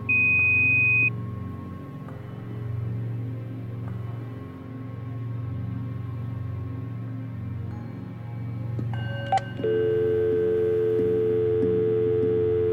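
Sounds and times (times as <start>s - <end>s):
low continuous hum: 0.0s - 12.7s
answering-machine style beep: 0.1s - 1.1s, 9.0s - 12.7s.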